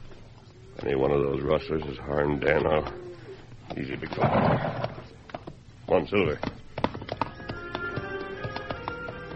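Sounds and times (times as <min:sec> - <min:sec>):
speech: 0:00.8 - 0:03.1, 0:03.7 - 0:05.0, 0:05.9 - 0:06.6
newly shod horse hooves clip-clopping, ridden slowly and cautiously: 0:03.6 - 0:09.3.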